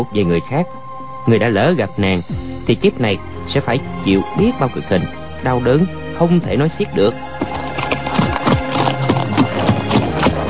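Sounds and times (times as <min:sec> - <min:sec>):
speech: 0:00.0 - 0:07.6
two ridden horses' hooves clip-clopping side by side: 0:07.2 - 0:10.4.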